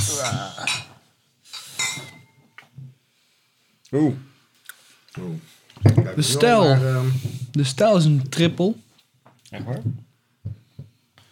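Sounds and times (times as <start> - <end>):
speech: 0.2 - 0.9, 3.9 - 4.3, 5.2 - 8.8, 9.5 - 10.1
beer glasses clinking in a toast: 0.6 - 2.4.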